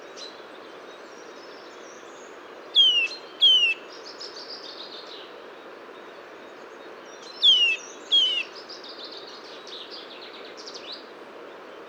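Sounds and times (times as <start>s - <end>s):
Eurasian nuthatch Sitta europaea descending whistled calls: 2.8s - 3.8s, 7.4s - 8.5s.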